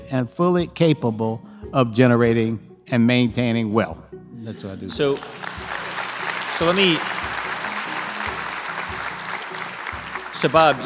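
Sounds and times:
speech: 0.1s - 5.4s, 6.6s - 7.2s, 10.4s - 10.8s
audience applauding: 5.0s - 10.8s.

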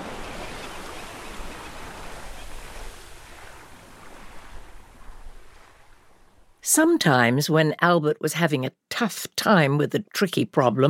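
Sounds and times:
waves washing and lapping on open water: 0.0s - 7.2s
wind rushing over open water: 0.0s - 7.4s
speech: 6.6s - 10.8s.

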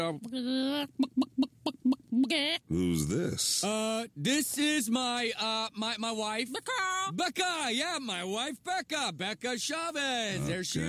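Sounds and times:
speech: 0.0s - 1.5s, 2.2s - 10.8s
person imitating chicken clucking: 0.6s - 2.5s.

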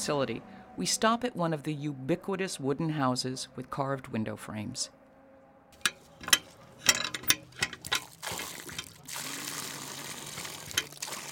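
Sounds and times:
speech: 0.0s - 5.0s
hand pump being worked: 5.8s - 9.2s, 10.3s - 11.1s
water gushing from a hand pump: 7.7s - 11.2s.

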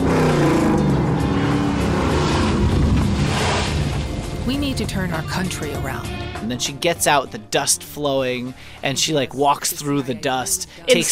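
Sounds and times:
car engine revving hard through a fast spinning maneuver: 0.0s - 6.5s
gritty rush of tire and road noise: 0.0s - 6.5s
speech: 4.8s - 11.0s.

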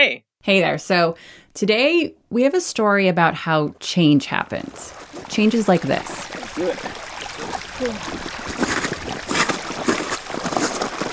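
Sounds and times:
speech: 0.0s - 7.1s, 7.8s - 8.7s
rushing water on the Greenland ice sheet: 4.2s - 11.1s.

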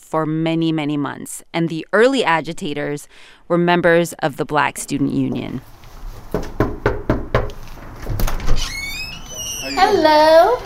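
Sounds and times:
speech: 0.1s - 6.5s, 9.8s - 10.6s
sharp knocks on a front door: 6.3s - 7.6s
high squeaky chirping tone: 8.6s - 10.2s.

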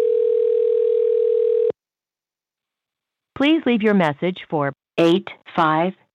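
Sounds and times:
electronic telephone ringback tone on an outgoing call to a company: 0.0s - 1.7s
speech: 3.4s - 6.1s.

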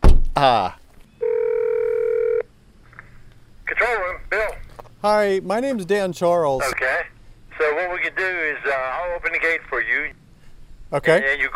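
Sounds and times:
dull thump: 0.0s - 0.4s
speech: 0.4s - 0.8s, 5.0s - 10.2s, 10.9s - 11.5s
phone line ringing tone from a guardhouse phone by a gate: 1.2s - 2.5s.

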